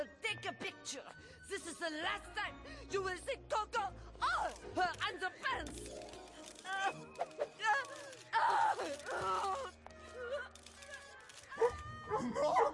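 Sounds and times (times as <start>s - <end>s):
speech: 0.0s - 10.6s, 11.6s - 12.7s
dog barking and growling: 11.6s - 12.7s.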